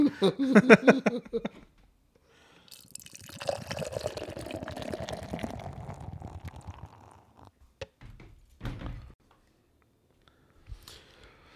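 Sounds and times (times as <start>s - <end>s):
speech: 0.1s - 1.7s
rye IPA beer pouring into a glass: 2.6s - 7.5s.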